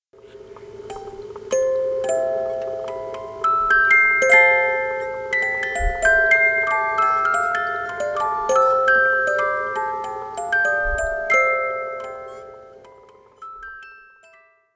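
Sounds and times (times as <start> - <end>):
music box bell before improvement: 0.9 - 14.7.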